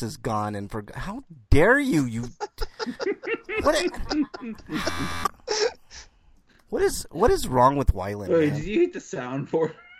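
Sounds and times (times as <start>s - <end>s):
speech: 0.0s - 5.7s, 6.7s - 9.9s
laughter: 2.2s - 5.8s
short vocal bursts: 4.6s - 5.4s
person imitating a game-show wrong-answer buzzer: 4.7s - 5.3s.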